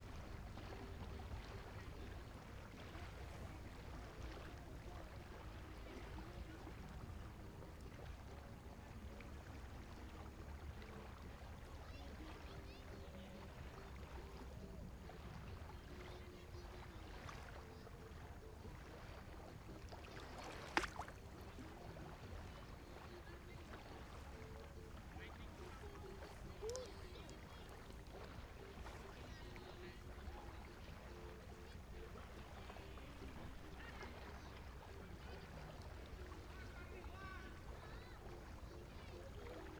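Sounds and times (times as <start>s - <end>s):
music heard from a lake in the Cerrado in late afternoon: 0.0s - 39.7s.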